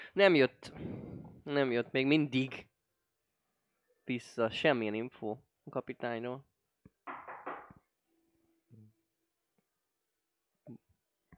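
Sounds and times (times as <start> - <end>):
speech: 0.2 - 2.7, 4.1 - 6.5
knocking on a table: 7.1 - 7.8.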